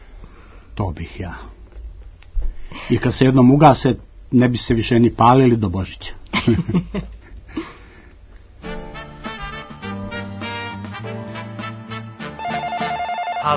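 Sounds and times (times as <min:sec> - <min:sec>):
speech: 0:00.8 - 0:01.6, 0:02.9 - 0:07.7
telephone ringing with a melodic tune-like ringtone: 0:12.4 - 0:13.5.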